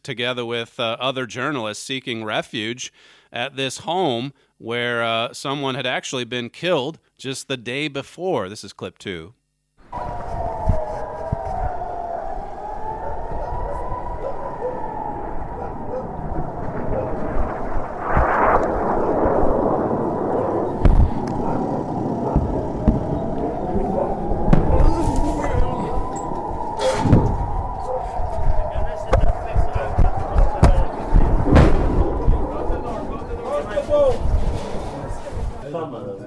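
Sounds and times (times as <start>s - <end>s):
speech: 0.0s - 10.2s
rumbling outdoor background: 9.8s - 35.6s
rockets roaring overhead: 9.8s - 35.7s
steady wailing siren: 9.9s - 35.1s
sharp cracks: 13.7s - 34.3s
loud rushing burst: 14.8s - 35.6s.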